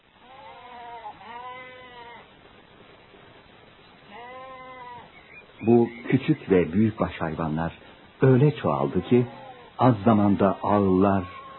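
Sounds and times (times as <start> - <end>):
steady hiss: 0.0 - 11.5
sheep and goats bleating: 0.2 - 2.3, 4.1 - 5.2, 8.6 - 11.5
speech: 5.6 - 11.4.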